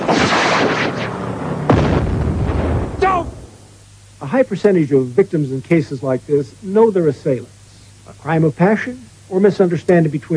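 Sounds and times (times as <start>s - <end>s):
flare gun being fired: 0.0s - 3.7s
loud continuous rumbling noise: 0.0s - 4.2s
speech: 4.3s - 10.3s.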